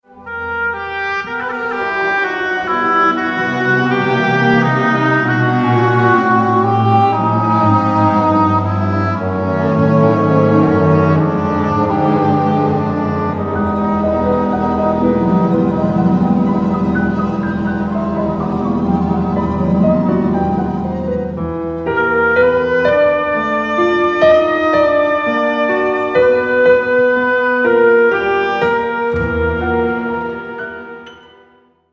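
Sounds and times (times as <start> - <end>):
second movement of a piano concerto: 0.0 - 31.7.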